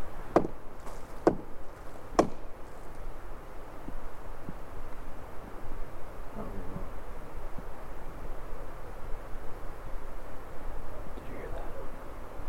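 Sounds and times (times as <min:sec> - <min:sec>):
low steady hiss: 0:00.0 - 0:12.4
sharp wooden knocks: 0:00.3 - 0:02.5.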